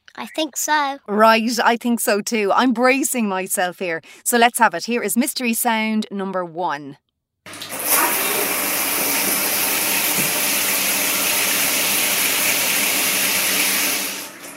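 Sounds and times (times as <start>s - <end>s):
speech: 0.2s - 7.6s
shower water pouring down: 7.5s - 14.5s.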